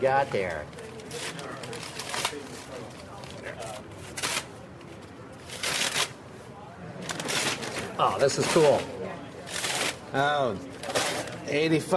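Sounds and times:
speech: 0.0 - 0.8, 8.0 - 9.2, 10.1 - 10.7, 11.4 - 11.9
brown wrapping paper torn and crumpled off a large flat object: 0.8 - 4.5, 5.4 - 6.2, 7.0 - 8.9, 9.5 - 10.0, 10.8 - 11.4.

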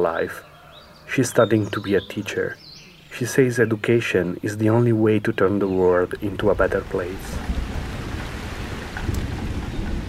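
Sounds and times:
speech: 0.0 - 0.5, 1.1 - 7.6
heavy rain pouring: 6.0 - 10.0
deep rolling thunder: 6.5 - 10.0.

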